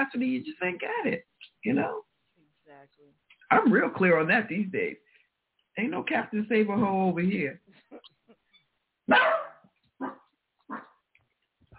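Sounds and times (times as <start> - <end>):
speech: 0.0 - 2.1, 2.8 - 5.0, 5.8 - 8.4, 9.1 - 10.9
dog barking: 9.1 - 11.0.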